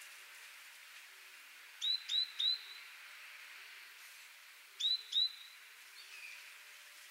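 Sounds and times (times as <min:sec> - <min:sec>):
steady faint hiss: 0:00.0 - 0:07.0
Great tit Parus major calling: 0:01.8 - 0:03.0, 0:04.8 - 0:06.5.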